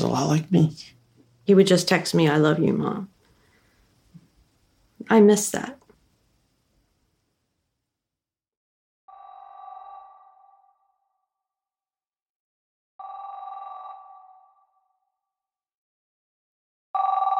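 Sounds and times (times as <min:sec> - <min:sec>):
speech: 0:00.1 - 0:03.2, 0:05.0 - 0:05.8
house telephone ringing in long electronic bursts: 0:13.0 - 0:14.7, 0:17.0 - 0:17.3.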